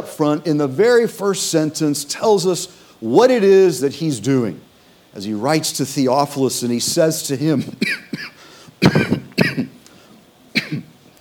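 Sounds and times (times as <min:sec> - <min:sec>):
speech: 0:00.0 - 0:09.2
preacher with a lingering cough coughing during a sermon: 0:07.6 - 0:09.8, 0:10.6 - 0:11.0.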